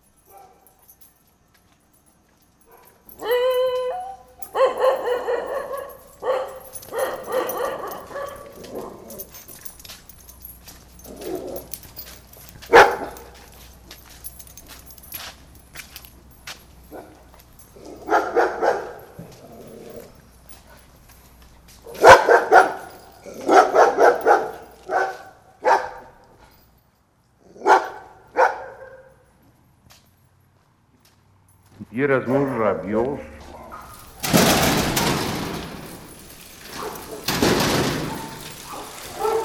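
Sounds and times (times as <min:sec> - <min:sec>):
dogs barking: 0:00.2 - 0:01.0, 0:02.7 - 0:13.8, 0:16.8 - 0:21.0, 0:21.8 - 0:26.4, 0:27.5 - 0:29.2, 0:33.4 - 0:39.4
speech: 0:32.0 - 0:33.4.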